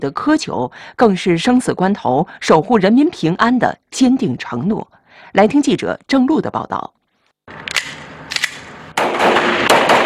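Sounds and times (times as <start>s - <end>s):
speech: 0.0s - 7.8s
gunfire at a special police training range: 7.8s - 10.0s.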